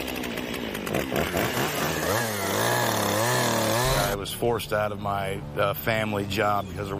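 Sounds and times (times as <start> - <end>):
chainsaw engine revving, used by a chainsaw artist: 0.0 - 4.2
speech: 1.0 - 1.8, 4.4 - 6.9.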